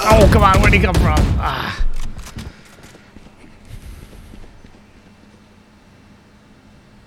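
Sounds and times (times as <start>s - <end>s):
speech: 0.2s - 1.8s
many rapid footsteps in a video game: 1.7s - 5.6s.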